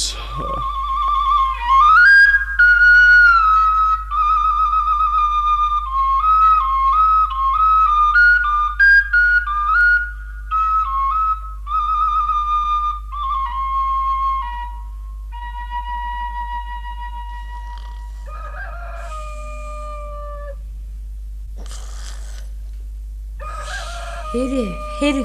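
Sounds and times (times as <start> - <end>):
steady low hum: 0.0 - 25.2
speech: 0.4 - 0.8, 24.4 - 25.2
several roosters crowing: 17.5 - 20.6, 23.4 - 25.2.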